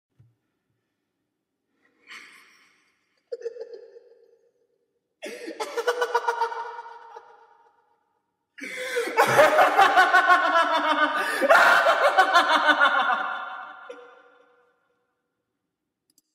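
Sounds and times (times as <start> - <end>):
horror house laughter: 3.2 - 4.2, 5.2 - 7.6, 8.7 - 14.1.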